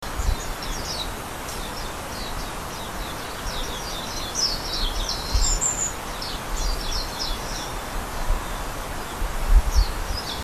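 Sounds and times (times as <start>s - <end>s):
flock of mahiwa birds calling on a walking path between a memorial and a shrine: 0.0s - 10.4s.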